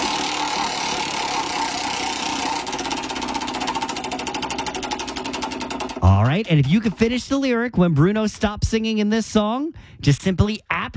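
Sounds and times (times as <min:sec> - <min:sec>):
constant loud bed of noise: 0:00.0 - 0:07.1
prize wheel spinning with rapid clicking: 0:00.0 - 0:07.3
speech: 0:06.4 - 0:10.9.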